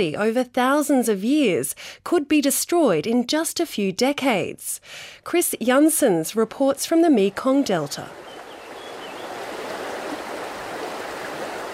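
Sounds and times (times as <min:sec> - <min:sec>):
speech: 0:00.0 - 0:08.4
river water rushing and flowing: 0:07.3 - 0:11.7.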